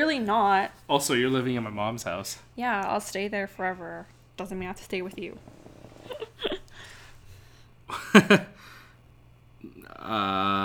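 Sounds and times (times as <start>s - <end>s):
speech: 0.0s - 6.6s, 7.9s - 8.7s, 10.0s - 10.6s
faint hum: 0.0s - 10.6s
couch creaking as it shifts under weight: 4.4s - 7.3s
short breathy vocal sounds: 9.6s - 10.6s.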